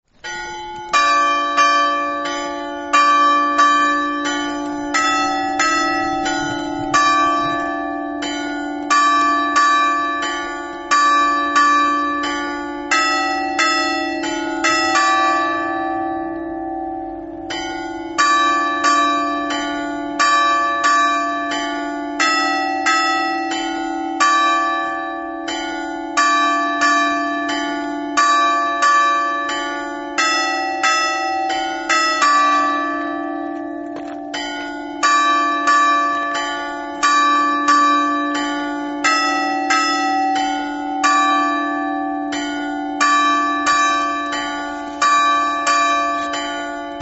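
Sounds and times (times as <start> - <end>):
bells ringing: 0.2 - 47.0.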